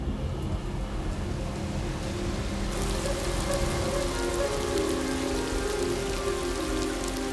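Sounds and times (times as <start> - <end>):
heavy rain showers on parched open desert ground near the coast: 0.0 - 7.3.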